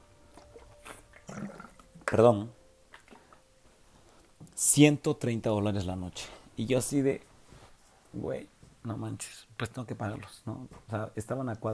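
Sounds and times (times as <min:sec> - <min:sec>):
sipping water: 0:00.4 - 0:02.0, 0:02.9 - 0:03.5
soft swallow: 0:00.8 - 0:01.8
speech: 0:02.1 - 0:02.6, 0:04.6 - 0:07.3, 0:08.1 - 0:11.7.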